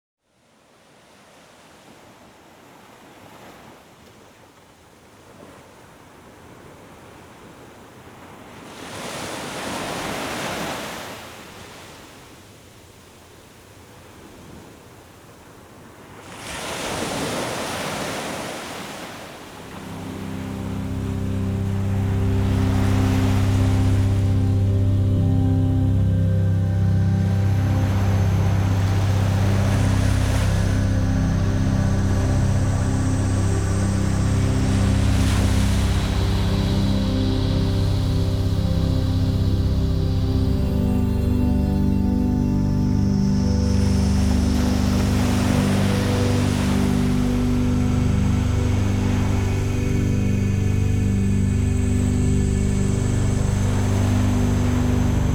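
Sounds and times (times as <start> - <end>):
ocean sounds: 6.9 - 55.3
relaxation music: 19.6 - 55.3.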